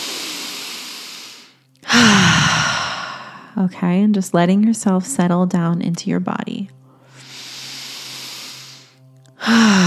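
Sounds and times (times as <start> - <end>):
deep breath in through the nose, out through the mouth during breathwork exercise: 0.0 - 3.6, 6.9 - 9.8
speech: 3.6 - 6.8, 9.5 - 9.8.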